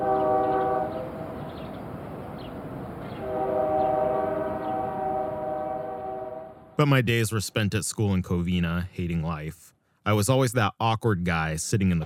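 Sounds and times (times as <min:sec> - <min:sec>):
train horn blasting with stacked harmonic tones: 0:00.0 - 0:01.6, 0:03.1 - 0:06.8
rail cars rolling through an industry train yard in La Puente: 0:00.0 - 0:06.0
speech: 0:06.8 - 0:12.0.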